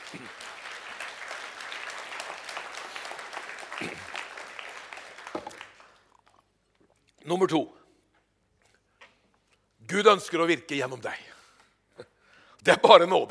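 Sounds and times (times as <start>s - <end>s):
large audience applause: 0.0s - 6.1s
speech: 7.2s - 7.8s, 9.9s - 11.3s, 12.6s - 13.2s.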